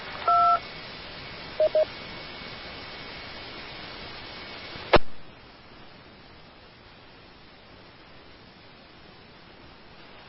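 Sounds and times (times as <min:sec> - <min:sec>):
hissing radio channel: 0:00.0 - 0:06.0, 0:08.6 - 0:10.2
touch-tone keypad beeps over a radio channel: 0:00.2 - 0:00.6, 0:01.6 - 0:01.9.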